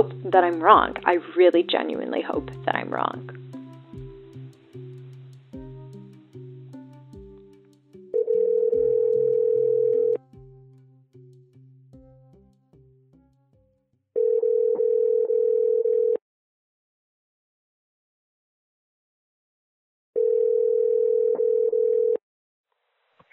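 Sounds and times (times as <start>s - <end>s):
speech: 0.0s - 3.4s
phone ringback tone while placing a call: 8.1s - 10.2s, 14.2s - 16.2s, 20.2s - 22.2s.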